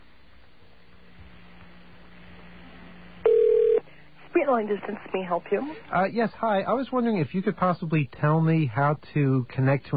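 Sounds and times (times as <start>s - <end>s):
open telephone line hum: 1.9s - 5.7s
speech: 4.5s - 9.9s.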